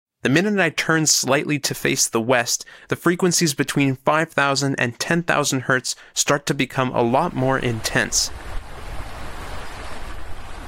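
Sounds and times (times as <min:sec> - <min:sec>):
speech: 0:00.2 - 0:08.5
river rapids roaring with churning water: 0:07.7 - 0:10.6.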